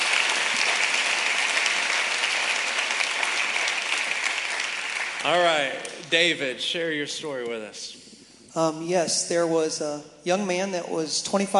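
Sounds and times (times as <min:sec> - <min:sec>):
crowd applauding: 0:00.0 - 0:06.4
speech: 0:05.2 - 0:11.5.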